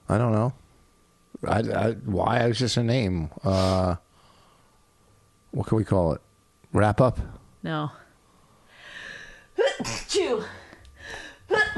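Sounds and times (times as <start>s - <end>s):
speech: 0.1s - 0.6s, 1.4s - 4.1s, 5.5s - 8.0s, 9.8s - 10.6s
person sneezing: 9.6s - 10.5s, 11.5s - 11.7s.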